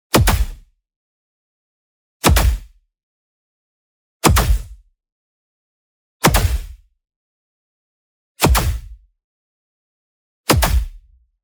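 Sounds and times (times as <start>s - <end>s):
punch smack: 0.1s - 0.6s, 2.2s - 2.7s, 4.3s - 4.8s, 6.2s - 6.8s, 8.4s - 9.0s, 10.5s - 11.0s.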